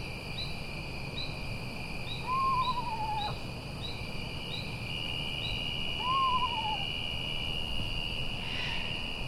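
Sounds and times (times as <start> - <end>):
steady insect trilling: 0.0 - 9.2
screech owl quavering descending whinnies in the Hudson Valley: 2.3 - 3.4, 6.0 - 6.9.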